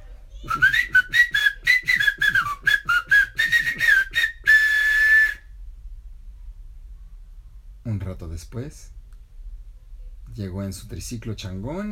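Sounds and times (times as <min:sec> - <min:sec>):
whistled signal call: 0:00.5 - 0:05.5
speech: 0:08.2 - 0:09.0, 0:10.4 - 0:11.9.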